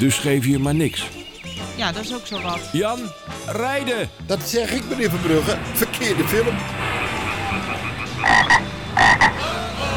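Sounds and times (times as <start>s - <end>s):
speech: 0.0s - 7.0s
frog croaking as it is run over by a vehicle: 6.8s - 9.5s.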